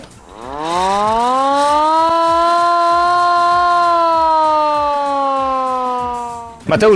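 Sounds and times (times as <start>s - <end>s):
hand-cranked siren on a 1933 manually operated antique fire wagon: 0.0s - 6.7s
speech: 6.7s - 6.9s.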